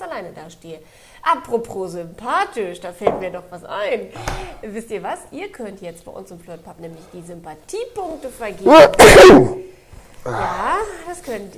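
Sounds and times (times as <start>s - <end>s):
speech: 0.2s - 11.5s
person sneezing: 8.7s - 11.0s.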